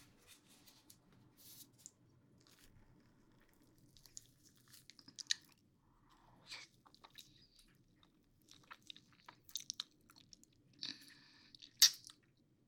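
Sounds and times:
biting and chewing cake: 2.4s - 12.3s.

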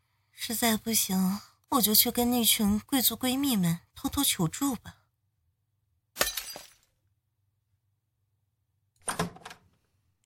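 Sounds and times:
speech: 0.5s - 5.0s
ceramic vase shattering with scattering shards: 6.2s - 7.0s.

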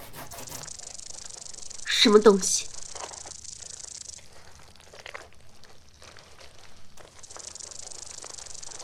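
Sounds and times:
snake hissing: 0.2s - 5.2s, 7.0s - 8.8s
soft rustling and crunching movement through undergrowth: 0.2s - 8.8s
speech: 2.0s - 2.7s.

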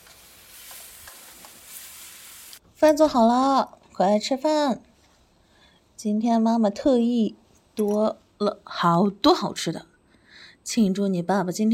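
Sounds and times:
faint frying sizzle of a home-cooked meal in a kitchen: 0.0s - 2.6s
speech: 2.8s - 4.9s, 6.0s - 9.9s, 10.6s - 11.7s.

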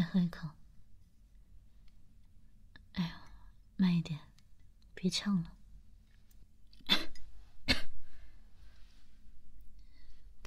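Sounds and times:
speech: 0.0s - 0.6s, 3.8s - 4.3s, 5.0s - 5.6s
faint noise: 0.0s - 10.4s
sharp coughs: 6.8s - 8.0s.

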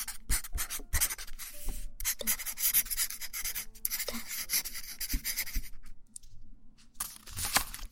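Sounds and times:
marker pen squeaking and scratching across a surface: 0.0s - 5.7s.

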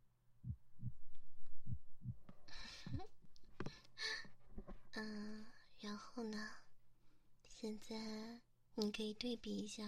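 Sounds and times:
slow regular human heartbeat: 0.4s - 3.2s
speech: 5.0s - 6.7s, 7.6s - 9.8s.

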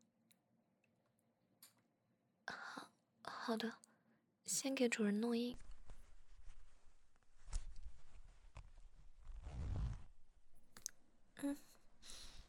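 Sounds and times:
speech: 3.5s - 3.9s, 4.5s - 5.7s
zipper being pulled open: 9.2s - 10.1s.

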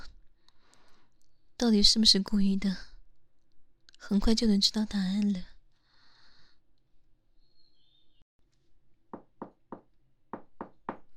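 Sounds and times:
speech: 1.6s - 2.9s, 4.0s - 5.5s
firm knocking on a door: 9.1s - 11.1s.

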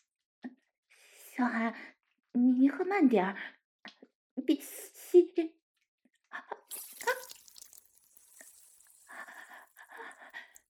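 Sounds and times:
speech: 1.4s - 5.6s
water pouring and gurgling: 6.7s - 10.6s.

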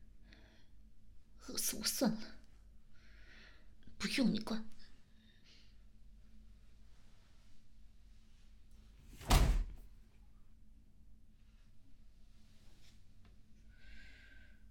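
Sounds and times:
speech: 1.5s - 2.4s, 4.0s - 4.8s
heavy door slamming with a brief rattle: 9.1s - 9.9s.

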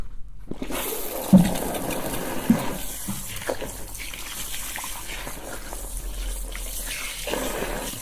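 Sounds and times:
water running from a tap for rinsing at a massage venue: 0.6s - 8.0s.

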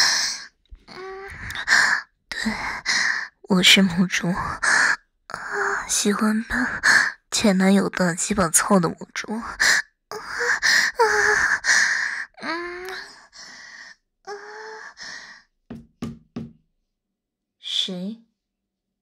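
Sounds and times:
breathy vocal gasps and moans: 0.0s - 3.5s, 4.1s - 7.3s, 9.3s - 15.5s
speech: 2.4s - 2.7s, 3.5s - 4.7s, 6.0s - 9.7s
quick knocks on a door: 15.7s - 16.6s.

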